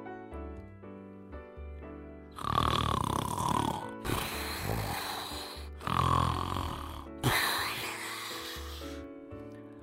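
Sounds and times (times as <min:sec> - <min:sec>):
man snoring asleep in a cave: 0:02.4 - 0:09.0.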